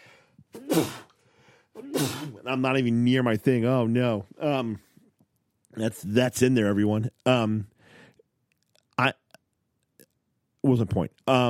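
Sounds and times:
faint breathing: 0.0s - 1.8s, 7.7s - 8.3s
human sneezing: 0.5s - 2.5s
speech: 2.2s - 4.9s, 5.8s - 7.7s, 9.0s - 9.2s, 10.6s - 11.4s.

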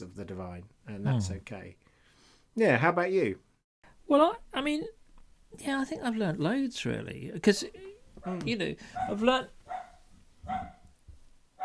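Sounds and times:
speech: 0.0s - 1.9s, 2.6s - 3.5s, 4.1s - 9.6s
dog barking: 8.2s - 10.9s.

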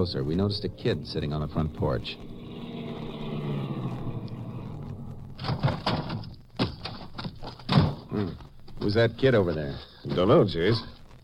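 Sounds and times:
speech: 0.0s - 2.3s, 8.2s - 10.9s
car engine rumbling as it drives up to a ranch: 0.1s - 6.5s
crunchy clatters and knocks: 5.4s - 10.4s.

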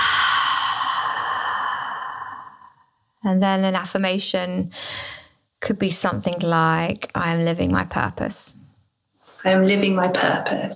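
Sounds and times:
deep breathing during a calming exercise: 0.0s - 3.1s, 4.7s - 5.4s
speech: 3.2s - 8.6s, 9.4s - 10.7s.

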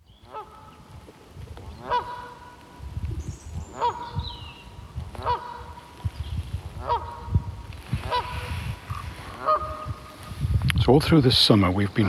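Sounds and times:
low rumbling wind noise: 0.0s - 12.0s
Canada geese honking outdoors: 0.2s - 1.0s, 1.7s - 3.0s, 3.6s - 6.1s, 6.7s - 10.4s, 11.9s - 12.0s
speech: 10.9s - 12.0s.

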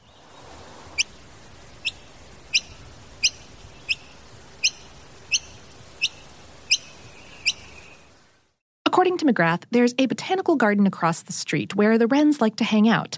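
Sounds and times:
noisy miner sharp high chirps: 1.8s - 8.0s
speech: 9.0s - 13.1s.

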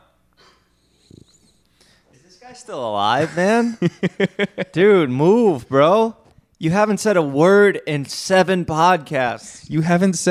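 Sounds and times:
short rattling snore-like snort: 0.9s - 1.6s
speech: 2.4s - 10.3s
laughter: 3.1s - 4.9s.

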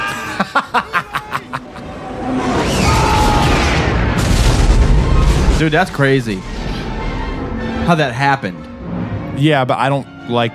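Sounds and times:
laughter: 0.1s - 1.9s
spaceship exploding in a film space battle: 2.3s - 7.0s
speech: 5.6s - 6.6s, 7.8s - 8.6s, 9.4s - 10.5s.

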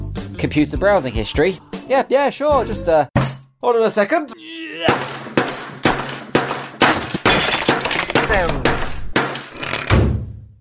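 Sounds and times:
speech: 0.4s - 5.1s, 8.3s - 8.7s
things smashing in a crashing sound effect: 6.8s - 10.2s
glass shattering with tinkling debris: 6.9s - 8.5s.

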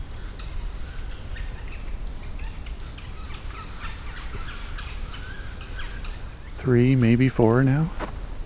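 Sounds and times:
low outdoor rumble: 0.0s - 8.4s
yellow-bellied sapsuckers giving harsh downward-slurred mewing calls: 1.4s - 7.2s
speech: 6.6s - 8.0s.

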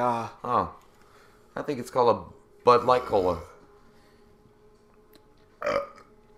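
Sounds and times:
speech: 0.0s - 0.8s, 1.6s - 3.5s, 5.6s - 5.9s
single short throaty burp: 5.6s - 6.1s.

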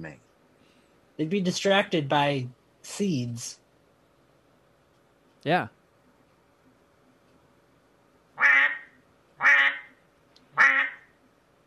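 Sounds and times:
speech: 0.0s - 0.3s, 1.2s - 3.6s, 5.4s - 5.8s
duck quacking: 8.4s - 9.9s, 10.6s - 11.0s.

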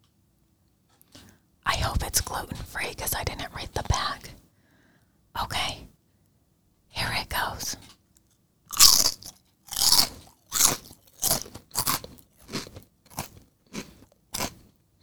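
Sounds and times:
speech: 1.8s - 4.4s, 5.4s - 5.8s
chip being bitten and chewed: 8.2s - 14.8s.

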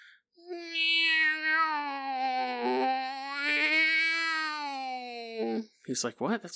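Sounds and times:
long wailing cry from a woodpile in Arizona: 0.4s - 5.6s
speech: 5.9s - 6.5s.

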